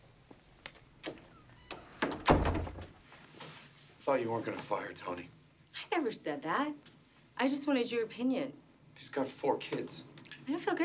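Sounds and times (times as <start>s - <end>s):
door being pushed shut: 1.7s - 3.0s
door thud with short rattle: 2.0s - 3.0s
speech: 4.1s - 5.4s, 6.0s - 10.8s.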